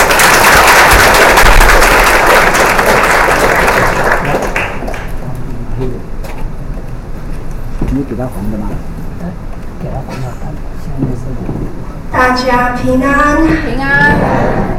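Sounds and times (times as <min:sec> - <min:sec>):
audience applause: 0:00.0 - 0:05.2
speech: 0:08.2 - 0:09.5, 0:12.2 - 0:14.2.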